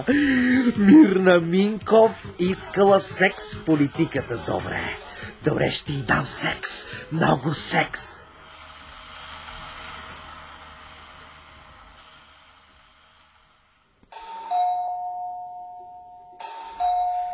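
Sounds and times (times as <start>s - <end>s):
speech: 0.0s - 8.2s
doorbell ding-dong chime: 14.1s - 17.3s.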